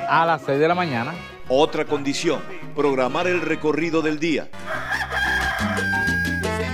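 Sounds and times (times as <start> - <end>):
speech: 0.1 - 4.7
rooster crowing: 4.6 - 6.6.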